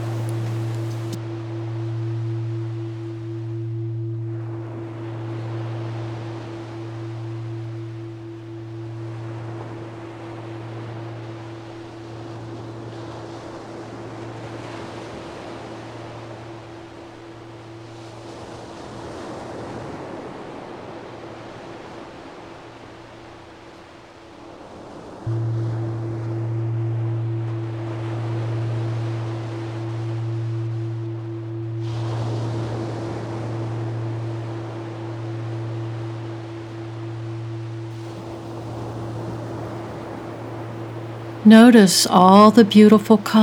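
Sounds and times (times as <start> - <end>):
low sustained droning tone: 0.0 - 13.3, 25.3 - 41.4
calm ocean waves: 0.0 - 43.4
speech: 41.4 - 43.4.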